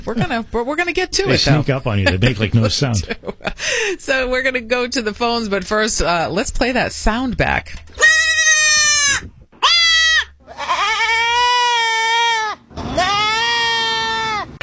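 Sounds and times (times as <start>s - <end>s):
speech: 0.0s - 8.0s
laughter: 1.3s - 3.8s
baby goat bleating: 8.0s - 14.5s.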